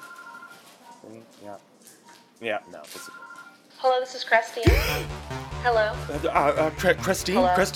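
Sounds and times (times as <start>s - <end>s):
phone line ringing tone after dialing a cell phone number: 0.0s - 0.7s, 2.8s - 3.7s
speech: 1.0s - 7.7s.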